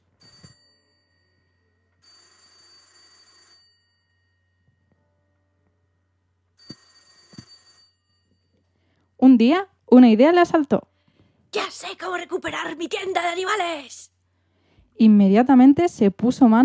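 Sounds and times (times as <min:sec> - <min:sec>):
telephone bell ringing in an animal shop: 0:00.0 - 0:05.1, 0:06.6 - 0:08.8
speech: 0:09.2 - 0:10.9, 0:11.6 - 0:14.1, 0:15.0 - 0:16.6.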